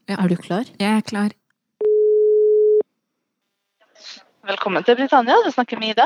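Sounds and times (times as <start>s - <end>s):
speech: 0.1s - 1.4s, 4.1s - 6.0s
telephone ringback tone while placing a call: 1.8s - 2.8s.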